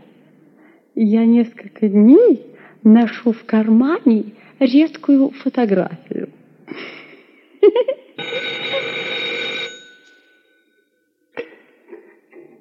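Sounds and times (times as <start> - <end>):
speech: 1.0 - 6.2
telephone bell ringing: 8.2 - 11.1.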